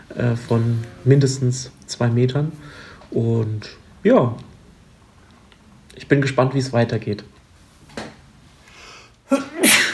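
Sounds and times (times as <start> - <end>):
speech: 0.2 - 4.5, 6.0 - 7.3
sharp intake of breath: 2.6 - 3.1, 8.6 - 9.2
sneeze: 9.3 - 9.9.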